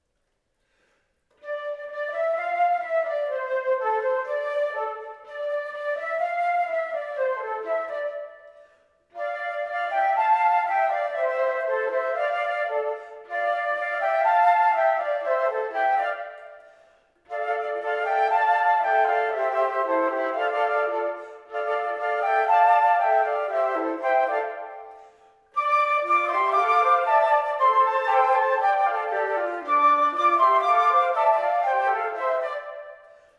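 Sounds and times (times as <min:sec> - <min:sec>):
flute: 0:01.3 - 0:33.3.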